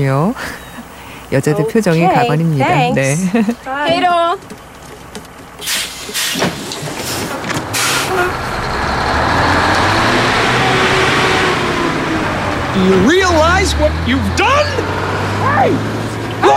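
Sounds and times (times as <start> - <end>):
speech: 0.0 - 0.6, 1.3 - 4.6, 8.1 - 9.4, 12.8 - 16.5
laughter: 3.0 - 3.7
bus engine rumbling and revving as it accelerates: 3.0 - 16.5
bus air brakes hissing: 5.6 - 8.6.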